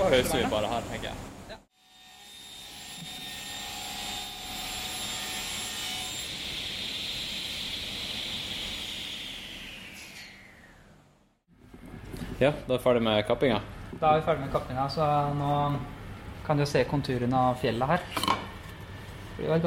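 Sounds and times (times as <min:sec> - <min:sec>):
speech: 0:00.1 - 0:01.3, 0:12.4 - 0:18.4, 0:19.4 - 0:19.6
power saw cutting wood: 0:01.8 - 0:10.6.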